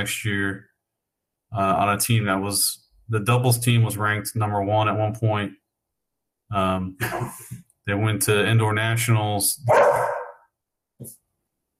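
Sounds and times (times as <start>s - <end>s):
speech: 0.0s - 0.7s, 1.5s - 5.6s, 6.5s - 10.2s, 11.0s - 11.2s
dog barking: 9.7s - 10.5s.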